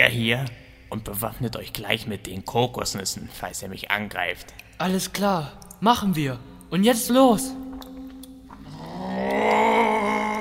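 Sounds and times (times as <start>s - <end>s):
speech: 0.1s - 7.6s
dragon roaring harshly: 8.6s - 10.3s.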